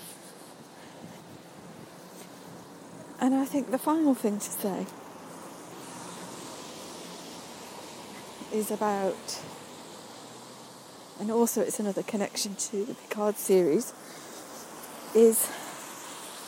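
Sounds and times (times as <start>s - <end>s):
wind rushing and rumbling against the microphone: 0.0s - 9.8s
speech: 3.2s - 5.0s, 8.5s - 9.6s, 11.2s - 14.3s, 15.1s - 15.6s.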